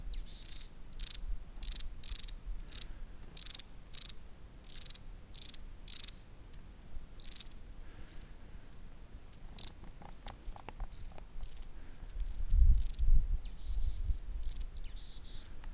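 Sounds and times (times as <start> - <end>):
Long-tailed Tit Aegithalos caudatus high thin calls: 0.0 - 6.3, 7.2 - 8.2, 9.6 - 9.8, 10.9 - 15.6.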